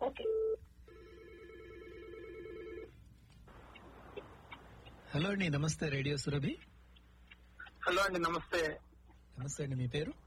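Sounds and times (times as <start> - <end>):
speech: 0.0 - 0.4, 5.1 - 6.7, 7.9 - 8.8, 9.4 - 10.2
telephone dialing tones as a caller is connected to a call-in line: 0.2 - 2.9.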